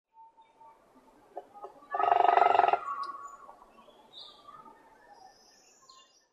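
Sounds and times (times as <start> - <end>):
hairy woodpecker: 1.4 - 3.3.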